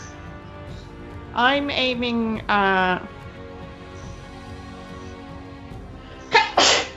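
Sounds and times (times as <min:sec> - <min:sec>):
speech: 0:01.4 - 0:03.2
person sneezing loudly and theatrically: 0:06.3 - 0:06.9.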